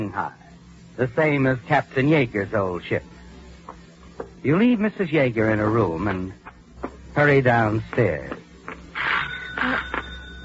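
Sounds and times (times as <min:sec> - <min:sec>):
speech: 0:00.0 - 0:00.4, 0:01.0 - 0:03.1, 0:04.4 - 0:08.4
faint steady hum: 0:00.0 - 0:10.4
doorbell buzzing: 0:09.0 - 0:10.4.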